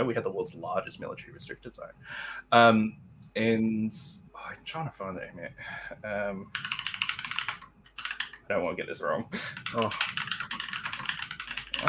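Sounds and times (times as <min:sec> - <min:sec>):
speech: 0:00.0 - 0:06.8, 0:08.5 - 0:10.2
clacking of keys on a mechanical keyboard: 0:06.5 - 0:08.4, 0:09.5 - 0:11.8.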